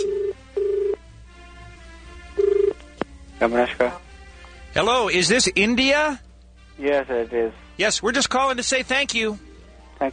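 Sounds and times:
telephone ringing tone after a number is dialled: 0:00.0 - 0:01.0, 0:02.4 - 0:02.8
speech: 0:03.4 - 0:04.0, 0:04.7 - 0:06.2, 0:06.8 - 0:10.1.

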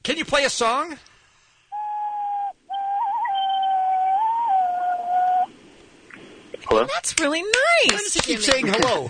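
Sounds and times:
speech: 0:00.1 - 0:01.1, 0:06.7 - 0:09.0
cupped-hand whistle blown through thumbs: 0:01.8 - 0:05.5.

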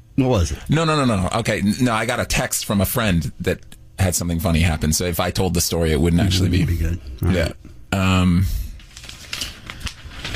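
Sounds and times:
speech: 0:00.2 - 0:08.6
paper being shuffled and crinkled: 0:08.7 - 0:10.3.

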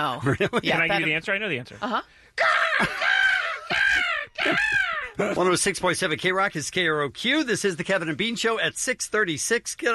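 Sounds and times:
speech: 0:00.0 - 0:03.1, 0:04.4 - 0:09.9
person imitating a seagull: 0:02.4 - 0:05.4.

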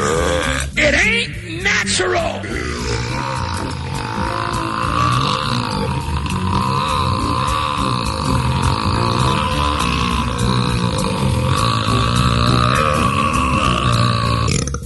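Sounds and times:
loud drawn-out deep croaking belch: 0:00.0 - 0:00.8, 0:01.4 - 0:14.8.

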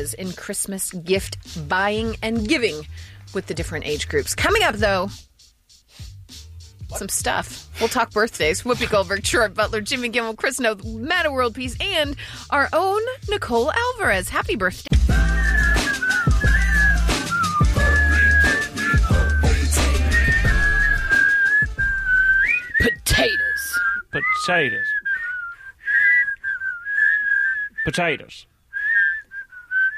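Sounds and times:
speech: 0:00.0 - 0:05.3, 0:06.9 - 0:14.9, 0:24.4 - 0:25.0, 0:27.9 - 0:28.5
person whistling a wavering melody: 0:15.1 - 0:27.9, 0:28.7 - 0:29.9.

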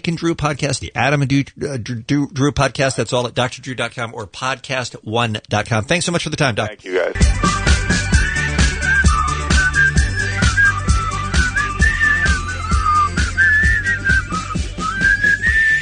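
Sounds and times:
speech: 0:00.0 - 0:08.0
beat-driven musical backing: 0:06.9 - 0:15.8
person whistling a melody: 0:07.2 - 0:15.8.

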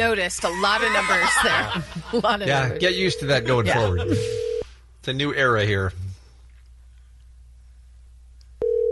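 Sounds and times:
speech: 0:00.0 - 0:06.0
laughter: 0:00.5 - 0:02.8, 0:03.5 - 0:04.4
telephone line tone after dialing a number: 0:02.7 - 0:04.6, 0:08.6 - 0:08.9.

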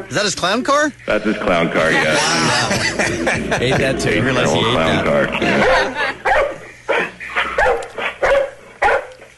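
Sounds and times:
speech: 0:00.2 - 0:06.0
laughter: 0:01.1 - 0:06.3
dog barking: 0:05.6 - 0:09.2.

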